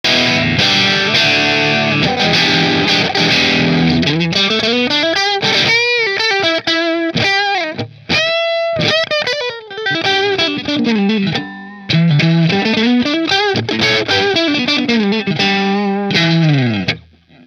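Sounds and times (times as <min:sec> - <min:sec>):
guitars through Marshall amplifier: 0:00.0 - 0:17.4.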